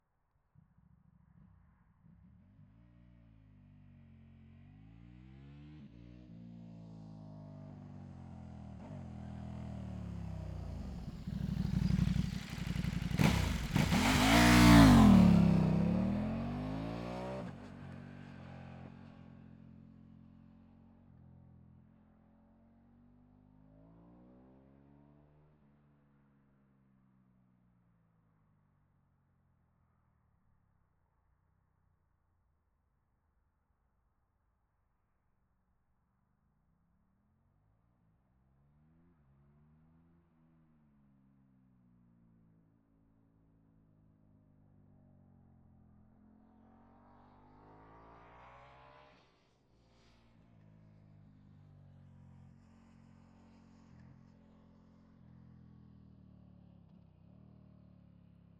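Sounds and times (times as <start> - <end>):
KTM RC8R motorcycle fast approach, stop and away: 0.8 - 26.8, 43.8 - 58.5.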